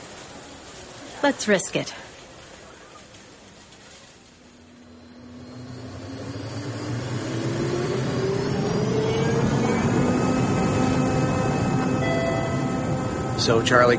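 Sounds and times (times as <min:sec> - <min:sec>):
speech: 0:01.2 - 0:02.1, 0:13.5 - 0:13.9
airplane engine roaring during takeoff: 0:04.4 - 0:13.9.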